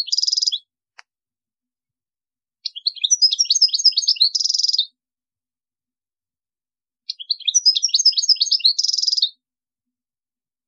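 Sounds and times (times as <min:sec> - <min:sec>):
European goldfinch singing: 0:00.0 - 0:00.7, 0:02.6 - 0:05.0, 0:07.0 - 0:09.4.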